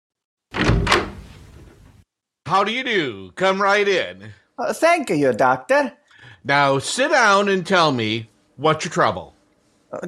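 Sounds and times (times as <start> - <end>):
wooden office door with latch opening and shutting: 0.5 - 2.0
speech: 2.5 - 10.0.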